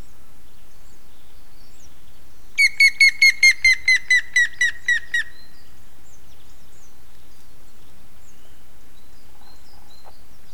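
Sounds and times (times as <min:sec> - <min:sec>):
grey-headed woodpecker whistled call series: 0:02.6 - 0:05.4.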